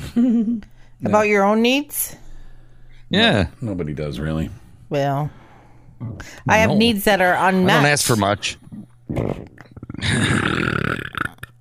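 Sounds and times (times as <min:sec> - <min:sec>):
speech: 0:00.2 - 0:02.2, 0:03.1 - 0:05.4, 0:06.0 - 0:11.2
person burping: 0:08.7 - 0:11.6.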